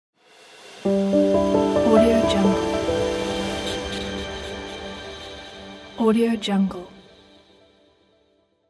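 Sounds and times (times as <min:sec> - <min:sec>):
opening piano logo jingle: 0:00.8 - 0:06.1.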